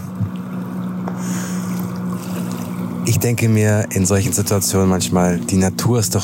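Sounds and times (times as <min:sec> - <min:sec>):
motorboat engine revving at sea: 0:00.0 - 0:06.2
water and spray: 0:00.0 - 0:06.2
speech: 0:03.1 - 0:06.2.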